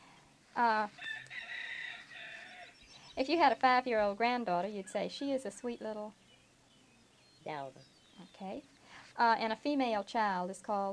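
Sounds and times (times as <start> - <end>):
faint noise: 0.0 - 10.9
speech: 0.6 - 1.1, 3.2 - 6.2, 7.4 - 10.9
rooster crowing: 1.0 - 2.8.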